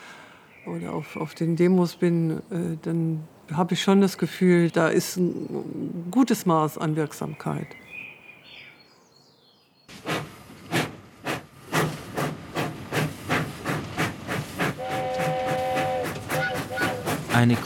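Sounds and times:
faint outdoor birdsong: 0.0 - 9.9
speech: 0.6 - 7.8, 17.4 - 17.6
steam engine puffing steam: 9.9 - 17.6.

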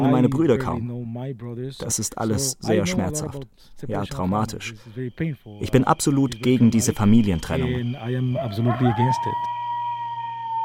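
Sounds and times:
speech: 0.0 - 9.6
coyote howling at night in desert: 7.4 - 10.6.

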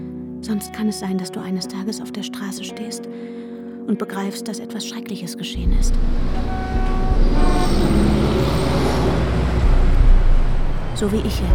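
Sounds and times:
speech: 0.4 - 8.0, 11.0 - 11.5
busy street traffic rumbling with a low engine roar: 5.6 - 11.5
sustained car horn blasts: 6.2 - 10.1.

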